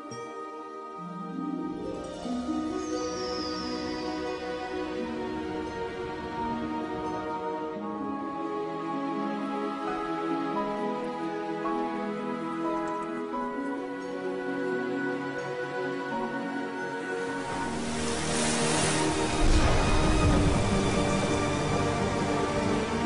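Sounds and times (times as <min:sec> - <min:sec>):
piano theme: 0:00.8 - 0:23.0.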